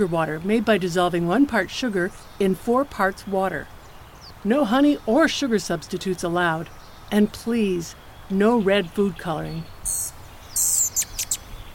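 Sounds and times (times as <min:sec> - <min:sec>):
speech: 0:00.0 - 0:03.8, 0:04.4 - 0:10.7
Rufous Hummingbird buzzy bursts and sharp thin chips: 0:09.9 - 0:11.5.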